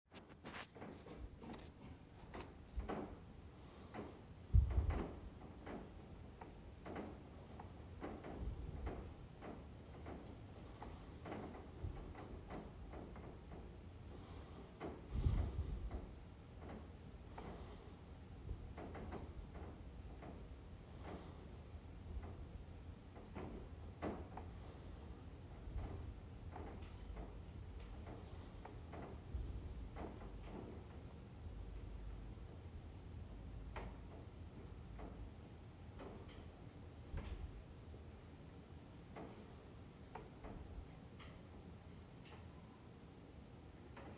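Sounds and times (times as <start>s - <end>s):
noisy metal siding: 0.1s - 44.1s.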